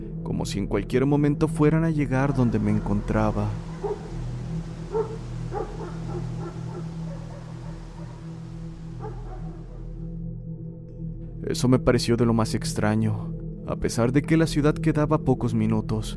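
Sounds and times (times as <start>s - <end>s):
speech: 0.2s - 3.7s, 11.5s - 16.1s
pack of dogs barking in the distance: 2.1s - 10.0s.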